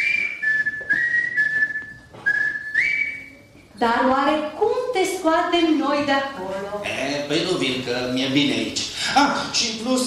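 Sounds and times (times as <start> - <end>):
person whistling a short wavering melody: 0.0 - 3.4
speech: 3.8 - 10.0.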